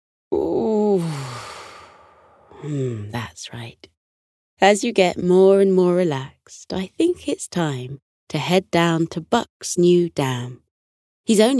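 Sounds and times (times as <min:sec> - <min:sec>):
speech: 0:00.3 - 0:01.3, 0:02.6 - 0:04.0, 0:04.6 - 0:10.6, 0:11.2 - 0:11.5
drawn-out yawn: 0:00.3 - 0:03.1.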